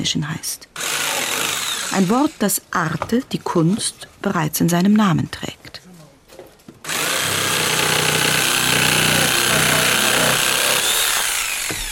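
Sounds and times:
speech: 0:00.0 - 0:00.8, 0:01.9 - 0:05.8
saw cutting wood in a workshop: 0:00.8 - 0:02.6, 0:06.9 - 0:11.9.

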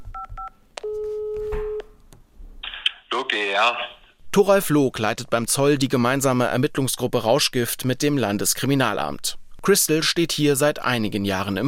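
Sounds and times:
telephone keypad dialing beeps: 0:00.0 - 0:01.5
speech: 0:03.3 - 0:11.6.

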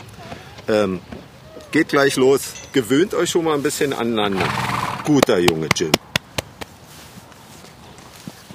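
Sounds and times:
horse hooves clip-clopping at a slow walk: 0:00.0 - 0:02.8, 0:04.7 - 0:08.5
speech: 0:00.7 - 0:06.0.

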